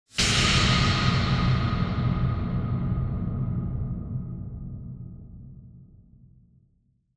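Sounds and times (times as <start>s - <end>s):
impact with reverb: 0.1s - 5.9s.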